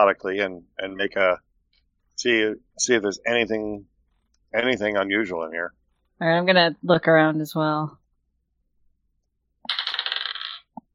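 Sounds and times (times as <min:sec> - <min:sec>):
speech: 0:00.0 - 0:01.5, 0:02.2 - 0:03.9, 0:04.5 - 0:08.0
dice clattering onto a hard table: 0:09.7 - 0:10.9.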